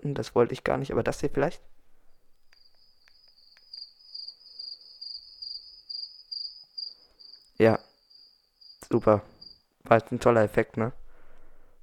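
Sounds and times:
speech: 0.1s - 1.8s, 7.6s - 7.9s, 8.9s - 11.0s
crickets chirping sound effect: 1.9s - 9.7s.

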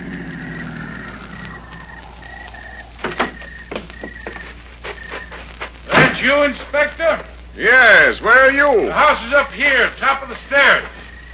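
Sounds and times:
car engine humming and winding down as the vehicle stops: 0.0s - 3.6s
speech: 6.2s - 11.0s.

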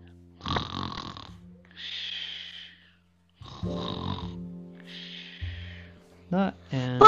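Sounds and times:
voice imitating snoring: 0.4s - 2.0s, 3.4s - 4.4s
speech: 6.3s - 6.9s.

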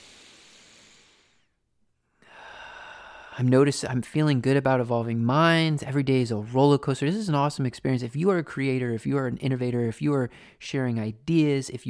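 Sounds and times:
deep breath drawn in: 0.0s - 3.5s, 10.3s - 10.6s
speech: 3.4s - 11.8s.

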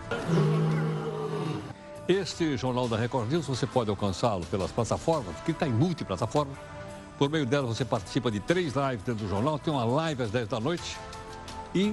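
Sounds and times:
lion roaring: 0.0s - 1.8s
speech: 2.1s - 11.9s.

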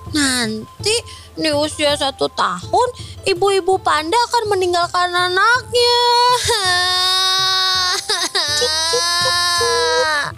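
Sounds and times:
speech: 0.1s - 7.0s
child crying in a loud high wail: 6.2s - 10.3s.

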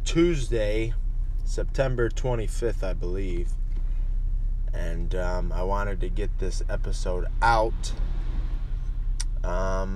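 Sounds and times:
low engine rumble inside a car idling in traffic: 0.0s - 9.9s
speech: 0.1s - 3.6s, 4.7s - 8.1s, 9.4s - 9.9s.

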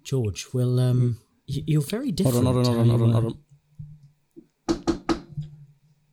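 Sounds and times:
speech: 0.1s - 3.4s
sharp knocking on a door: 4.7s - 5.6s.

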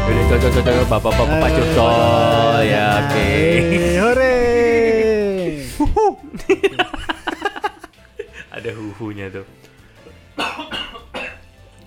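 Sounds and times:
laughter: 0.2s - 9.0s
speech: 0.3s - 6.3s, 9.0s - 9.7s
man coughing harshly: 10.4s - 11.4s.

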